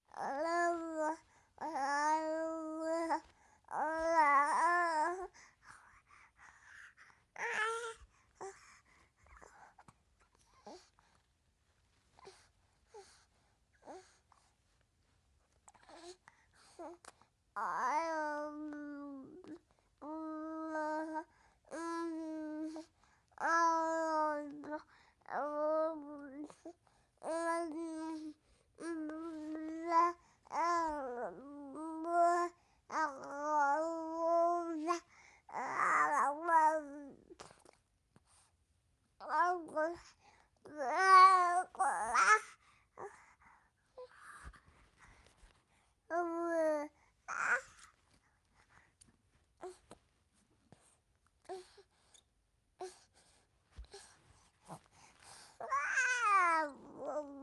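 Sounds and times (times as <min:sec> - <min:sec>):
five-month-old baby babbling: 0:00.1 - 0:05.3, 0:07.4 - 0:08.6, 0:17.6 - 0:26.6, 0:27.2 - 0:37.5, 0:39.2 - 0:40.0, 0:40.6 - 0:43.2, 0:46.1 - 0:47.8, 0:55.6 - 0:57.4.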